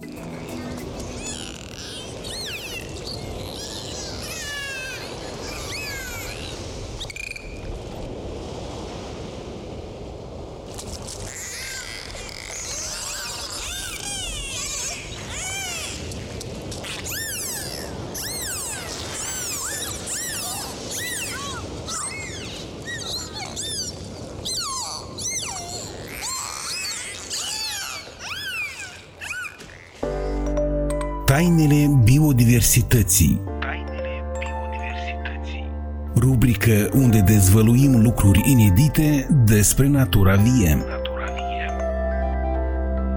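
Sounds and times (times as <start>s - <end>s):
dolphins whistling and chirping: 0.0s - 7.8s, 11.3s - 30.5s
sea waves: 0.0s - 43.1s
speech: 31.4s - 33.5s, 36.4s - 41.0s.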